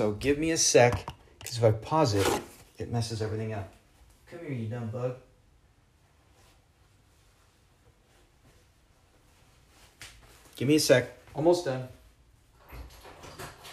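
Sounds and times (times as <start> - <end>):
speech: 0.0 - 5.3, 10.6 - 12.0
chairs dragged and shifted around a room: 2.0 - 2.7.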